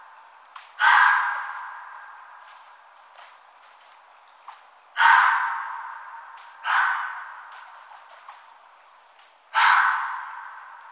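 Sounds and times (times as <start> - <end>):
red fox giving rasping breathy screams: 0.8 - 1.9, 5.0 - 7.4, 9.5 - 10.7.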